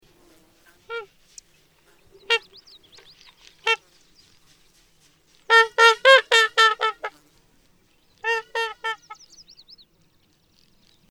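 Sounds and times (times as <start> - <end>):
Trumpeter Swan Cygnus buccinator calling: 0.6 - 4.8, 5.4 - 7.2, 8.2 - 9.8.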